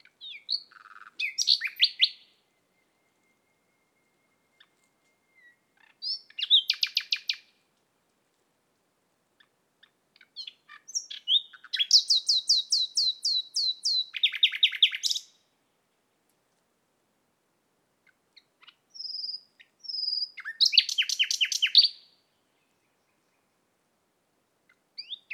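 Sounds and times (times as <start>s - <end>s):
Common nightingale Luscinia megarhynchos singing: 0.1s - 7.5s, 10.3s - 15.4s, 18.9s - 23.5s, 25.0s - 25.3s.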